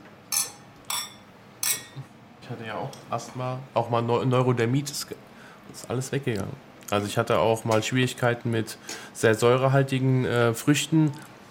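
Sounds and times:
glasses clinking in a toast: 0.3 - 2.0
speech: 2.5 - 11.3.

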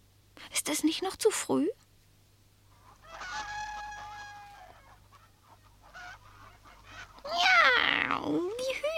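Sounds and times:
low hum: 0.0 - 8.9
speech: 0.7 - 1.9
chickens clucking and cackling: 2.7 - 7.3.

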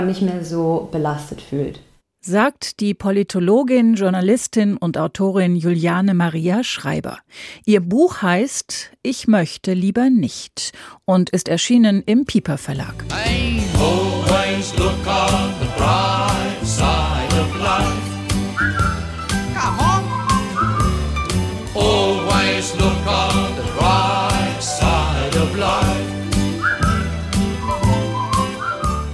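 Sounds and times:
speech: 0.0 - 14.0
upbeat band accompaniment with steady bass and percussion: 13.0 - 29.1
cheerful whistled melody: 17.5 - 21.6, 26.2 - 29.1.

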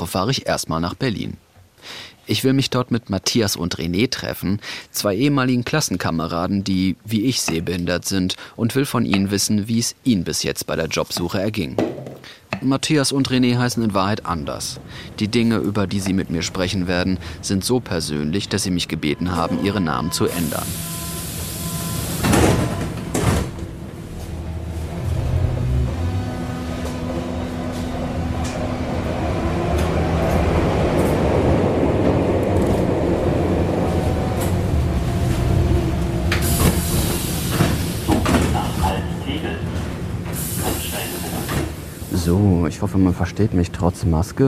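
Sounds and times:
speech: 0.0 - 21.1, 42.8 - 44.4
subway station announcement: 13.0 - 44.4
subway train rumbling and rattling: 13.3 - 44.4
subway sliding doors hissing and thudding: 20.3 - 25.2, 33.9 - 42.3.

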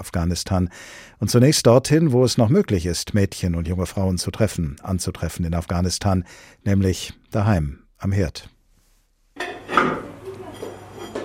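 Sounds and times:
speech: 0.0 - 8.6
crockery clattering as a painted plate is washed at a kitchen sink in Kabul: 9.4 - 11.2.

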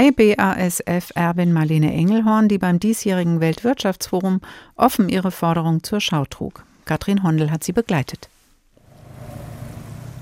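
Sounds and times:
speech: 0.0 - 8.3
low engine rumble of cars in slow stop-and-go traffic: 8.8 - 10.1.

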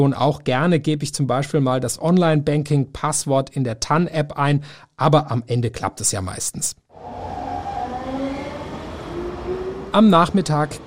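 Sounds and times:
speech: 0.0 - 7.4, 10.0 - 10.8
subway train rumbling: 7.0 - 10.8.

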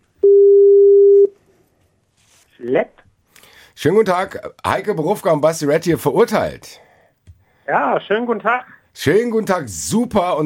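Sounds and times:
telephone ringing tone while placing call: 0.2 - 1.3
speech: 2.6 - 3.0, 3.8 - 6.9, 7.7 - 10.4.

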